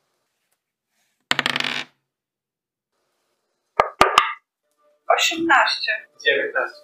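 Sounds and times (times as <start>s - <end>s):
dice clattering onto a hard table for a constitution check: 1.3s - 2.0s
speech: 5.2s - 6.8s.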